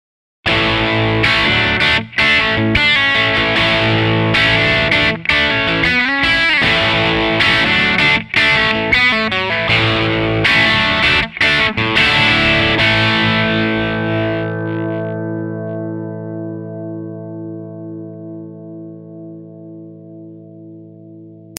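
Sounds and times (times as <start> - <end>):
crunchy rhythm: 0.5 - 15.1.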